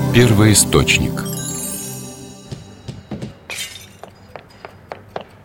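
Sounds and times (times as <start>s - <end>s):
speech: 0.2s - 1.4s
vase pieces clinking on the floor: 3.1s - 4.2s
vase shattering, knocked by a ball: 3.4s - 4.0s.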